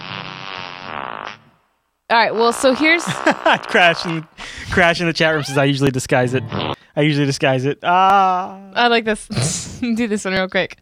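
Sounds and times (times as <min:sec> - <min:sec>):
loud buzzy cartoon fart sound effect: 0:00.0 - 0:04.3, 0:05.3 - 0:05.7, 0:06.4 - 0:06.8
speech: 0:02.1 - 0:10.7
laughter: 0:03.0 - 0:04.9.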